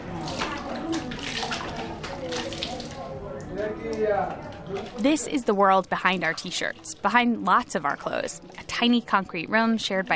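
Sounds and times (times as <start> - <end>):
bucket of cold water poured over head: 0.0 - 3.1, 4.5 - 9.0
speech: 3.6 - 10.1.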